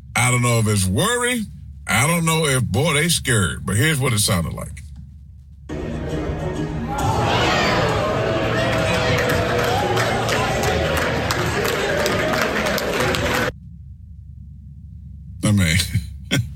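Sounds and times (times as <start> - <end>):
speech: 0.2 - 4.9
large crowd murmuring and roaring: 5.7 - 13.5
scattered muted clapping: 7.9 - 13.5.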